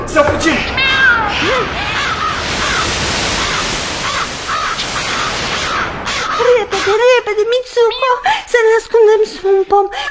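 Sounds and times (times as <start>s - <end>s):
speech: 0.2s - 0.8s, 7.0s - 10.0s
steady loud hiss: 0.2s - 7.8s
crow cawing: 0.8s - 7.0s.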